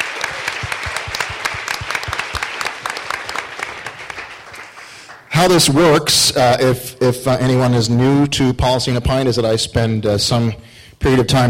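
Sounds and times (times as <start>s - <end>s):
audience applause from a room full of people: 0.0s - 5.3s
speech: 5.4s - 11.4s.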